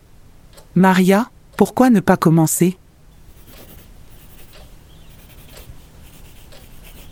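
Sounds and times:
speech: 0:00.8 - 0:02.8
faint low hum: 0:02.7 - 0:07.1
pen scratching on a sheet of paper: 0:03.3 - 0:07.1.

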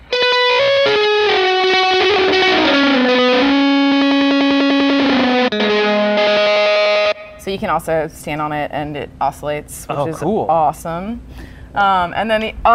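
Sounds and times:
electric guitar through a fuzz pedal in orange mode with echo before fuzz: 0:00.0 - 0:07.5
speech: 0:07.6 - 0:12.7.

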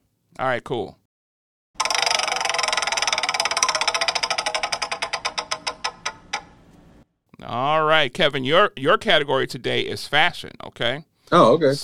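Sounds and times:
speech: 0:00.4 - 0:01.0, 0:07.4 - 0:11.8
prize wheel spinning to pick a category: 0:01.8 - 0:06.6.

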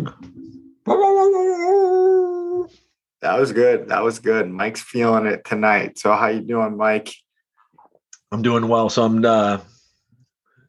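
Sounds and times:
person imitating a dog barking and howling: 0:00.8 - 0:02.7
speech: 0:03.2 - 0:07.2, 0:08.3 - 0:09.7.

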